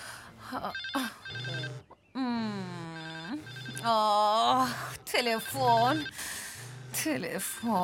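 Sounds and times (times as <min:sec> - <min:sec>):
telephone bell ringing: 0:00.7 - 0:01.8, 0:02.9 - 0:07.8.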